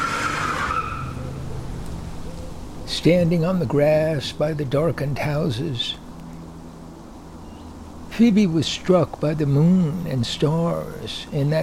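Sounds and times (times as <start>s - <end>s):
tire squeal of a car backing out of a driveway: 0.0s - 1.4s
car engine rumbling as it drives away: 0.0s - 11.6s
speech: 2.9s - 6.0s, 8.2s - 11.6s.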